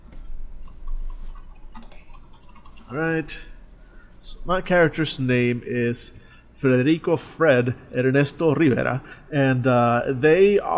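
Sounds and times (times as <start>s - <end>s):
keyboard typing: 0.6s - 2.9s
speech: 2.9s - 3.5s, 4.2s - 10.7s.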